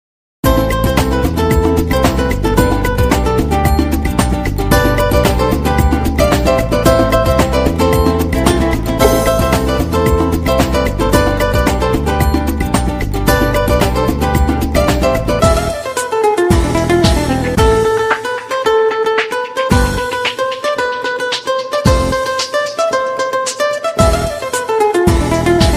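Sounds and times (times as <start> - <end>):
latin guitar ringtone: 0.5 - 25.7.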